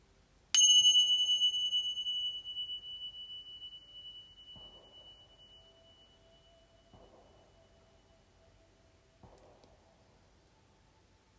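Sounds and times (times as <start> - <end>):
single bell struck with a clear bright tone: 0.6 - 6.9.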